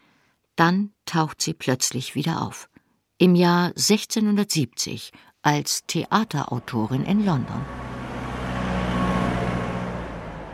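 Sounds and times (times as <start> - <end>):
speech: 0.6 - 7.9
road traffic with taxis and buses on a busy city street: 6.2 - 10.5.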